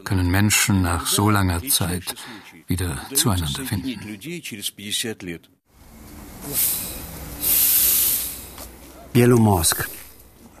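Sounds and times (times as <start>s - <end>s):
speech: 0.0s - 5.6s, 6.4s - 7.0s, 9.2s - 10.0s
train pulling into a small station: 5.8s - 8.8s
hissing air released from a train: 6.4s - 8.7s.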